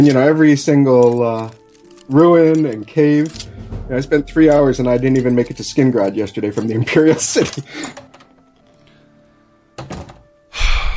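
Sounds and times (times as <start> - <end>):
speech: 0.0 - 8.1
door forced open with a heavy thunk: 9.8 - 10.3.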